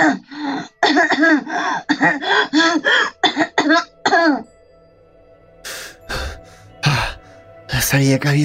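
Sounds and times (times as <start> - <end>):
person hacking coughs and clearing throat: 0.8 - 4.4
speech: 7.9 - 8.4.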